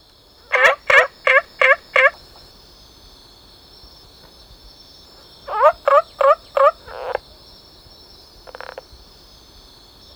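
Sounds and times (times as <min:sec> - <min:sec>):
olive frog Rana adenopleura giving rattling gobble-like notes: 0:00.5 - 0:02.2, 0:05.4 - 0:07.2, 0:08.5 - 0:08.8.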